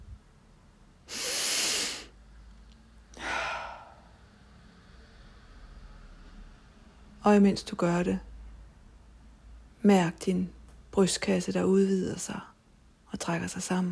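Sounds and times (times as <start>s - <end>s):
slow deep breath in and airy exhale: 1.1s - 2.2s, 3.1s - 6.2s
speech: 7.2s - 8.3s, 9.8s - 12.5s, 13.1s - 13.9s.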